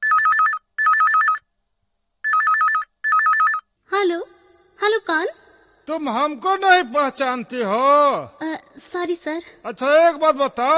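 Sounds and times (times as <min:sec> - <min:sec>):
telephone ringing with warbling electronic trill: 0:00.0 - 0:01.5, 0:02.2 - 0:03.7
speech: 0:05.1 - 0:10.7.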